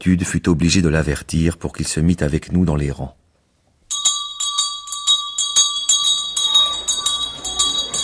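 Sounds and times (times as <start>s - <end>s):
speech: 0.0s - 3.2s
school bell ringing: 3.9s - 8.0s
faint bustle: 4.2s - 8.0s.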